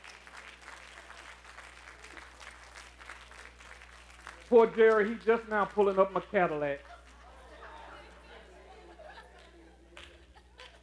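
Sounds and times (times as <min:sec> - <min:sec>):
standing audience applause in praise: 0:00.0 - 0:08.2
speech: 0:04.5 - 0:06.9
laughter: 0:06.8 - 0:10.8.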